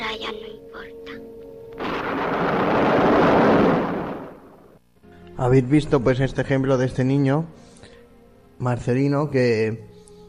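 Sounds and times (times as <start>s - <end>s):
thunder rumbling in a storm: 1.8s - 4.8s
speech: 5.4s - 7.7s, 8.6s - 9.9s.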